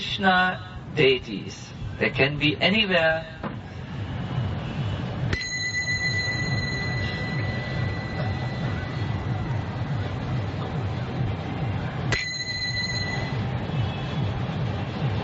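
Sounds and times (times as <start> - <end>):
speech: 0.2 - 3.4
rumble of a moving train: 3.5 - 15.2.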